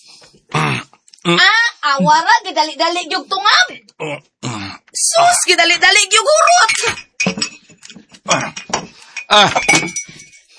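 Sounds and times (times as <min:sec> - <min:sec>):
speech: 0:01.2 - 0:04.3, 0:05.0 - 0:07.5, 0:08.3 - 0:08.6, 0:09.3 - 0:09.8
drinking glass dropped and clinking against a hard surface: 0:06.5 - 0:10.5.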